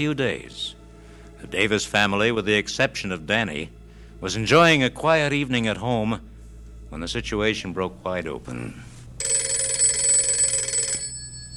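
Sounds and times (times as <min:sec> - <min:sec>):
speech: 0:00.0 - 0:00.8, 0:01.4 - 0:06.3, 0:06.9 - 0:08.9
low hum: 0:00.0 - 0:11.5
telephone bell ringing in a family home: 0:09.2 - 0:11.5.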